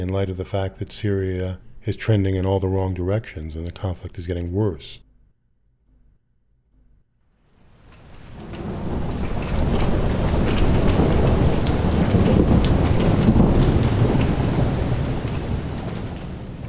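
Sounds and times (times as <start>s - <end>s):
speech: 0.0s - 5.0s
steady heavy rain pouring down: 7.5s - 16.6s.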